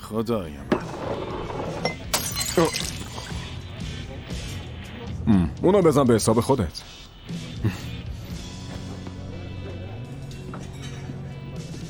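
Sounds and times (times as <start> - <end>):
speech: 0.1 - 1.3, 5.3 - 7.0
bright glass clink: 1.9 - 3.5
thrown drink glass smashing: 1.9 - 3.6.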